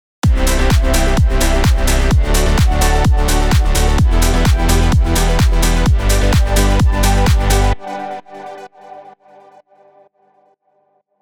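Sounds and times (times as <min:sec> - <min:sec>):
bass drums: 0:00.2 - 0:07.8.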